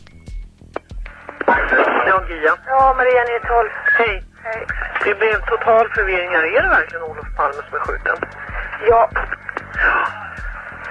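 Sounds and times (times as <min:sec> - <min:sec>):
hissing telephone line noise: 0:00.0 - 0:10.8
telephone ringing over a crackly line: 0:01.2 - 0:08.1
speech: 0:01.7 - 0:10.2.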